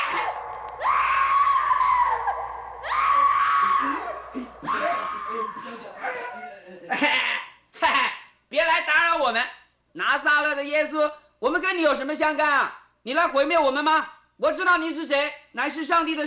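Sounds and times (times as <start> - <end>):
person screaming during a sermon in a synagogue: 0.0 - 7.5
speech: 8.8 - 16.2.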